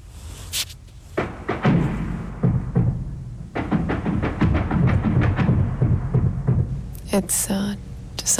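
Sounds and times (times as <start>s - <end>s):
explosions of war: 1.2s - 7.1s
speech: 7.1s - 8.3s.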